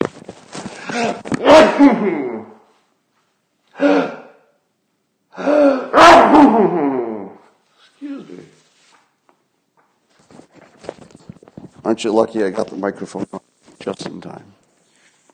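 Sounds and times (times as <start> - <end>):
person sneezing with voiced gasping intakes: 0.8 - 2.7, 3.7 - 4.5, 5.4 - 8.6
speech: 1.0 - 2.3, 3.8 - 4.1, 12.0 - 13.4, 14.0 - 14.6.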